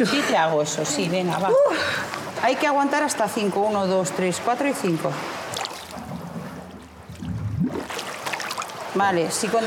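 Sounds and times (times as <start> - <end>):
speech: 0.0 - 5.5, 9.0 - 9.6
bubbles blown underwater: 7.1 - 8.1.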